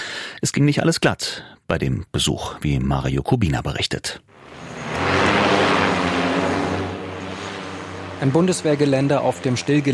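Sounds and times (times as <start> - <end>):
speech: 0.4 - 4.6, 8.2 - 9.9
interceptor drone propeller whining on takeoff: 4.3 - 9.9
low interceptor drone motor hum: 4.3 - 9.9.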